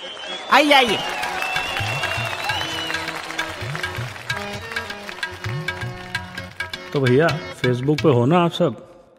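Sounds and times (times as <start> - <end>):
audience applause: 0.0 - 6.5
speech: 0.5 - 1.2, 7.0 - 8.9
music playing: 0.6 - 8.4.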